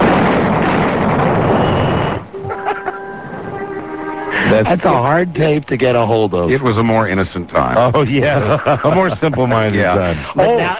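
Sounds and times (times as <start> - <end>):
cartoon explosion as a cartoon character is blown up: 0.0 - 3.7
laughter: 2.4 - 3.2, 7.7 - 10.6
speech: 4.6 - 10.7.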